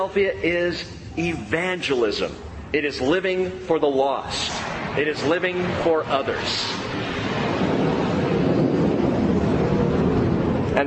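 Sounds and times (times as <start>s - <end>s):
speech: 0.0s - 7.0s
airplane passing low overhead: 0.0s - 10.8s.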